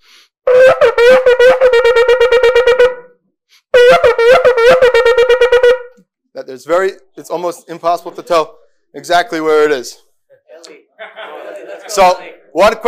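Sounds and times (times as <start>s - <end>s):
shofar sounding a series of blasts in one breath: 0.5s - 6.0s
speech: 6.6s - 10.8s, 11.9s - 12.8s
laughter: 7.3s - 8.6s, 10.6s - 12.4s.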